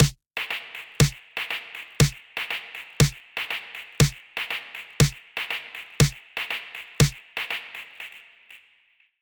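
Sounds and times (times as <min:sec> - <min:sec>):
filtered dirty percussion with feedback echo: 0:00.0 - 0:01.2, 0:02.0 - 0:02.2, 0:03.0 - 0:03.2, 0:04.0 - 0:04.2, 0:05.0 - 0:05.2
snare drum: 0:00.0 - 0:07.7.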